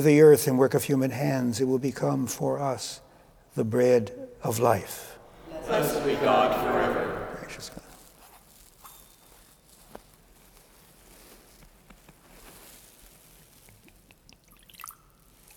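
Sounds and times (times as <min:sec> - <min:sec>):
speech: 0:00.0 - 0:03.0, 0:03.6 - 0:07.8
laughter: 0:05.2 - 0:08.0
soft drips: 0:13.7 - 0:15.5
water poured into wine in a chalice: 0:14.2 - 0:15.5.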